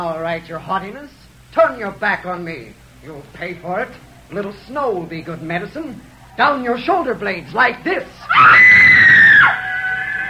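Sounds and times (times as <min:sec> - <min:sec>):
speech: 0:00.0 - 0:08.7
woman screaming in rage: 0:08.2 - 0:10.2.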